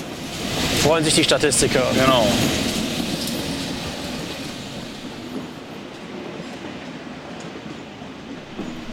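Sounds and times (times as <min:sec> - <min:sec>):
rhythmic clatter of a high-speed train: 0:00.0 - 0:06.0
ICE high-speed train departing, rolling wheels rumbling: 0:00.0 - 0:08.9
speech: 0:00.8 - 0:02.8.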